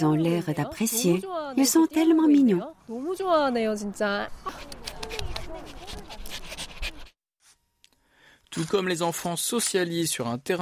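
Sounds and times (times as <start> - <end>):
speech: 0.0 - 4.8, 8.5 - 10.6
dogs panting in quick rhythmic pants: 4.5 - 7.2.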